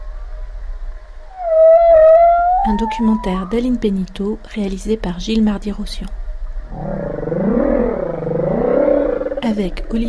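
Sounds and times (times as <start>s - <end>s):
humpback whale song: 1.3s - 3.8s, 6.7s - 9.5s
speech: 2.6s - 7.0s, 9.5s - 10.0s.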